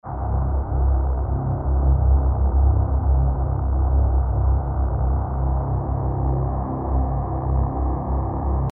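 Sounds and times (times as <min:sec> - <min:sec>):
dangerous drone in C: 0:00.1 - 0:08.7.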